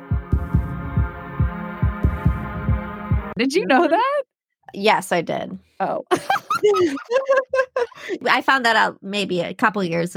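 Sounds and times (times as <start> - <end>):
heartbeat sample in a song: 0.1 - 3.4
speech: 3.4 - 10.1
laughter: 6.1 - 8.2.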